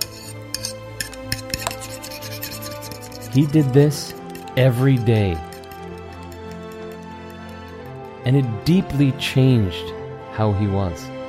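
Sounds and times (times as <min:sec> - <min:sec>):
dishes being scrubbed: 0:00.0 - 0:07.0
speech: 0:03.3 - 0:05.5, 0:08.3 - 0:11.2.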